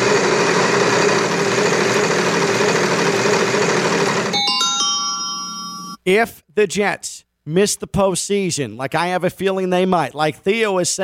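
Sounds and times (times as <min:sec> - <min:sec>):
prize wheel spinning with dense steady whirring rattle: 0:00.1 - 0:06.0
bright ringing chime of prize wheel: 0:04.3 - 0:06.0
speech: 0:06.1 - 0:11.0.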